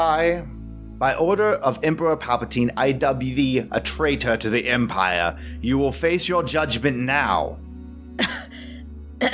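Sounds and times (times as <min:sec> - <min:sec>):
speech: 0:00.0 - 0:07.6
wet sickly cough behind an altar in a church: 0:08.2 - 0:08.5.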